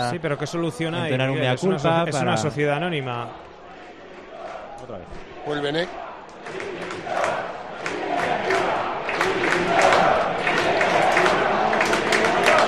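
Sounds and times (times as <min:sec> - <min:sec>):
speech: 0:00.0 - 0:03.5, 0:04.8 - 0:06.8
large stadium crowd roaring and shouting: 0:00.0 - 0:12.6
scattered clapping: 0:06.2 - 0:12.6.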